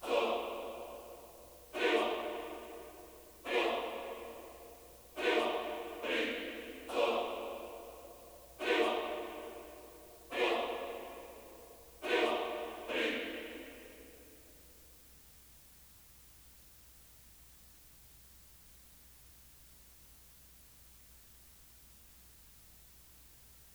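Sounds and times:
140 BPM A-sharp minor choir loop: 0.0s - 14.4s.

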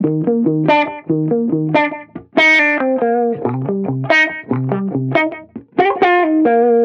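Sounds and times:
reggae guitar loop in D sharp major: 0.0s - 6.8s.

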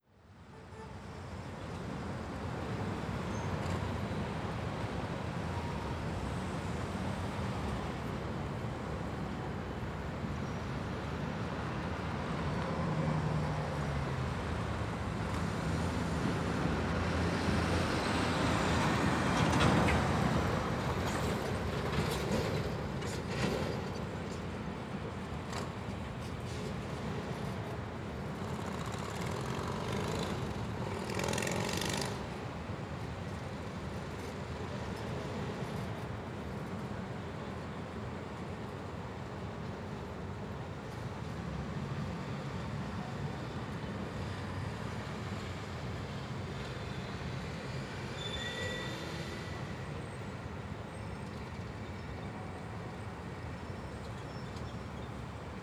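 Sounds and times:
city traffic close: 0.2s - 55.6s.

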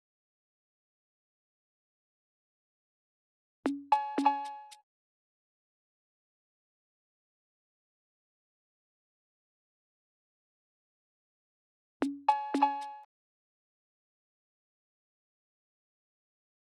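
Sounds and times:
115 BPM drum loop: 3.7s - 4.5s.

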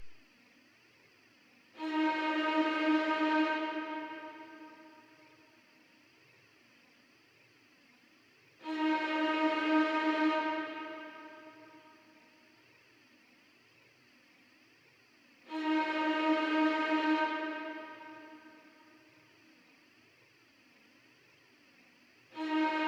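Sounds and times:
dark D# minor string melody loop: 1.8s - 5.0s, 8.6s - 12.0s, 15.5s - 18.7s, 22.4s - 22.8s.

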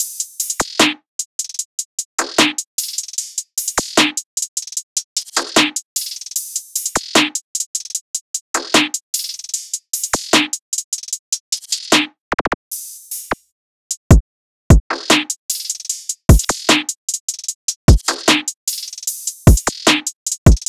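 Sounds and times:
jungle drum loop at 151 BPM: 0.0s - 12.1s, 14.0s - 20.6s.

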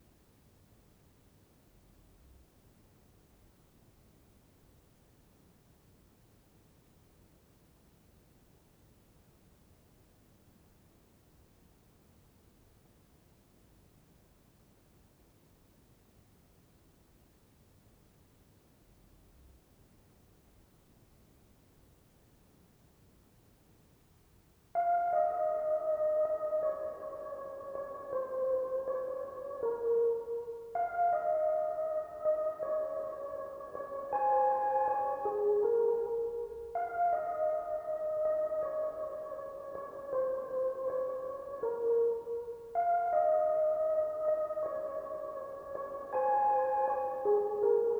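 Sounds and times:
lofi synth melody loop in F sharp minor: 24.8s - 47.9s.

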